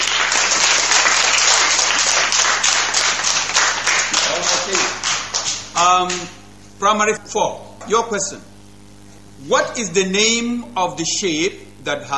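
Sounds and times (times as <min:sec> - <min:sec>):
crowd applauding: 0:00.0 - 0:06.4
speech: 0:05.8 - 0:08.5, 0:09.4 - 0:12.1.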